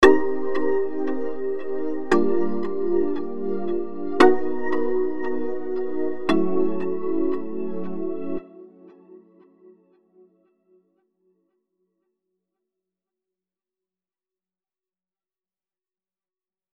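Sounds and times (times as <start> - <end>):
polysynth with flanger comb and chorus: 0.0 - 9.1.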